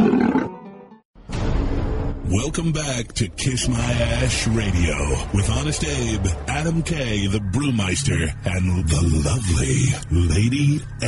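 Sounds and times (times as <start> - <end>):
big cat roaring: 0.0 - 0.5
speech: 2.3 - 11.0.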